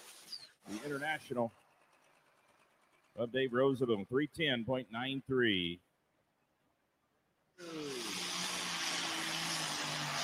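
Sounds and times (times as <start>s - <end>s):
tractor engine roaring in a horsepower competition: 0.6s - 4.1s, 7.6s - 10.2s
speech: 0.7s - 1.6s, 3.2s - 5.8s.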